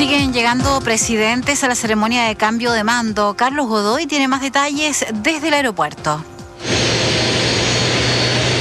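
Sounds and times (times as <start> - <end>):
speech: 0.2 - 6.8
private jet engines roaring after landing on airport apron: 6.6 - 8.5.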